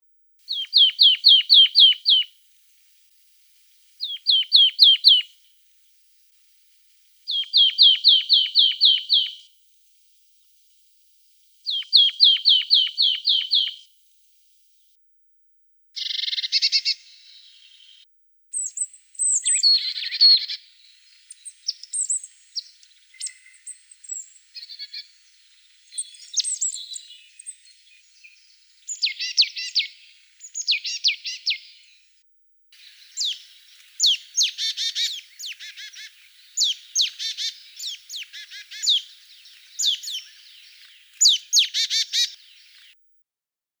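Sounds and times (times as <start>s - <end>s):
Poecile palustris calling: 0.5s - 2.3s, 4.0s - 5.3s, 7.3s - 9.5s, 11.7s - 13.8s, 32.8s - 43.0s.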